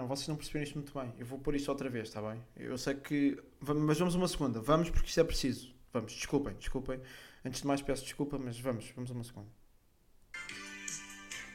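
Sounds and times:
speech: 0.0s - 9.6s
phone ringtone with bright tonal electronic melody: 10.4s - 11.5s.

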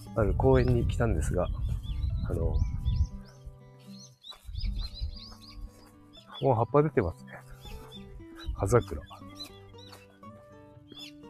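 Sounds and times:
speech: 0.2s - 2.7s, 6.4s - 7.2s, 8.6s - 9.1s
birds in a leafy cherry tree in a park chirping and squawking: 0.2s - 11.2s.

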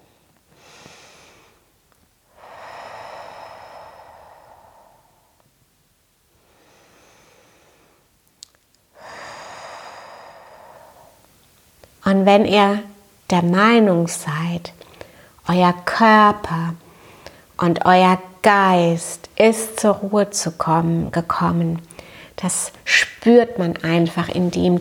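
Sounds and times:
slow deep breathing in and out: 0.0s - 5.5s, 6.3s - 8.2s, 8.9s - 11.3s, 14.8s - 15.4s, 16.8s - 17.6s, 21.9s - 22.4s
speech: 12.1s - 14.9s, 15.5s - 16.8s, 17.6s - 24.7s.

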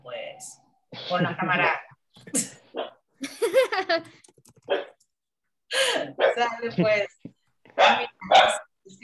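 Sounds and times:
speech: 0.4s - 2.5s, 6.4s - 7.1s
laughter: 3.2s - 4.2s
dog barking: 4.7s - 5.0s, 6.2s - 6.4s, 7.8s - 8.7s.

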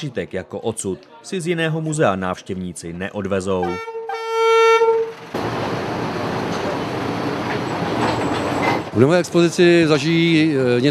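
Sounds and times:
speech: 0.0s - 3.9s, 9.0s - 10.8s
suspended deep-mine locomotive horn-like tone: 3.6s - 5.2s
suspended deep-mine locomotive running along an overhead ceiling rail: 5.1s - 10.8s.

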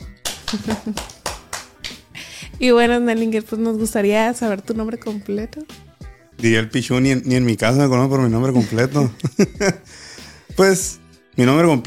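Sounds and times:
small group hand claps applauding: 0.0s - 2.2s
laughter: 0.4s - 1.2s, 8.6s - 9.9s
speech: 0.5s - 1.2s, 2.6s - 5.8s, 6.4s - 11.8s.

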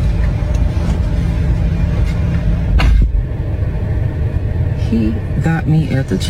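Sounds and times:
running vehicle rumble heard from inside the car: 0.0s - 6.2s
speech: 4.9s - 6.2s.

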